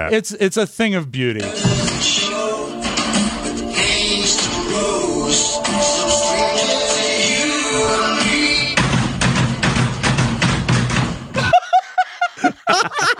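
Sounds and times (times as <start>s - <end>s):
speech: 0.0s - 2.8s, 4.1s - 8.4s
music: 1.4s - 11.5s
laughter: 11.4s - 13.1s.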